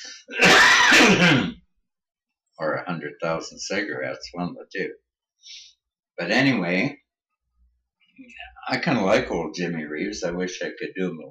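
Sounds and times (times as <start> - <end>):
sneeze from a cold: 0.3 - 1.6
speech: 1.1 - 1.6, 2.6 - 7.0, 8.2 - 11.2
sniff from a cold: 5.4 - 5.8.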